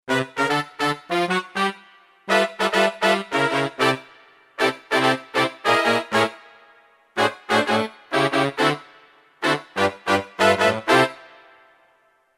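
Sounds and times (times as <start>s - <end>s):
Kurzweil K2000 synthesizer hip brass: 0.1s - 12.3s.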